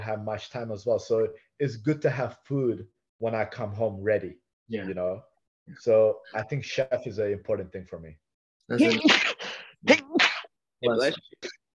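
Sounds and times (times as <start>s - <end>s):
speech: 0.1s - 10.0s, 10.8s - 11.6s
person sneezing: 8.8s - 11.1s.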